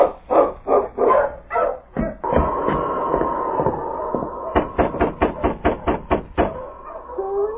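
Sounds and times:
husky sled dog team barking excitedly: 0:00.0 - 0:07.5
husky sled dog drawn-out howling whine: 0:02.2 - 0:05.0, 0:06.5 - 0:07.5.

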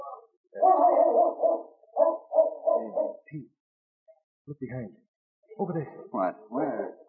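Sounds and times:
Malamute sled dog howling: 0:00.6 - 0:03.2
speech: 0:03.3 - 0:03.6, 0:04.5 - 0:07.0.

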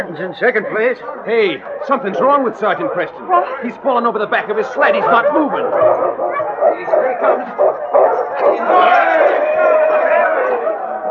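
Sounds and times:
speech: 0:00.0 - 0:08.0
laughter: 0:00.0 - 0:11.1
sled dogs barking and yipping excitedly: 0:00.0 - 0:11.1
dense crowd shouting and cheering at a sled race finish: 0:04.8 - 0:11.1.

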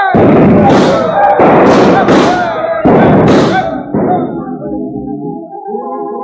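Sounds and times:
revolvers fired at a target in a street: 0:00.1 - 0:04.3.

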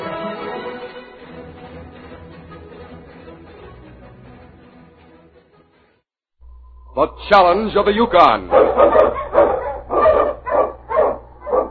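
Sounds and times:
speech: 0:07.0 - 0:09.0
sled dogs huskies barking: 0:08.4 - 0:11.6.

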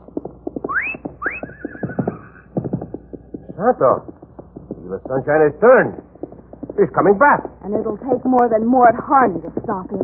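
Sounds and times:
galloping hoofbeats: 0:00.0 - 0:10.0
horse whinnying: 0:00.7 - 0:02.4
speech: 0:03.6 - 0:04.2, 0:04.9 - 0:06.0, 0:06.8 - 0:10.0.

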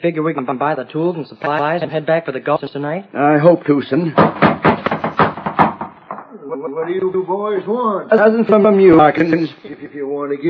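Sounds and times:
speech: 0:00.0 - 0:04.9, 0:06.5 - 0:10.4
hollow knocks on a wooden door: 0:04.2 - 0:06.2.

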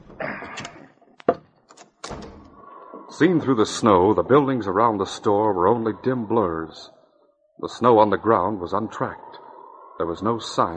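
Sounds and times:
heavy wooden front door being unbarred and opened, scraping and creaking: 0:00.0 - 0:04.0
speech: 0:03.2 - 0:07.0, 0:07.6 - 0:09.3, 0:10.0 - 0:10.7.

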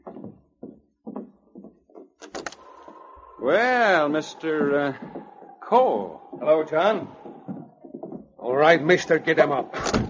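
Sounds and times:
soft dull thumps: 0:00.0 - 0:02.2, 0:03.8 - 0:09.2
front door creaking open: 0:02.2 - 0:02.8, 0:09.7 - 0:10.0
speech: 0:03.4 - 0:07.2, 0:08.5 - 0:10.0.

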